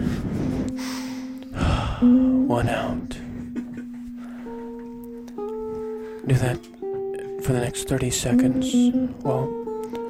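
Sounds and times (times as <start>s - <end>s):
deep airy breaths drawn in during a relaxation breathing exercise: 0.0s - 2.1s
speech: 2.0s - 3.2s, 6.3s - 6.8s, 7.4s - 9.6s.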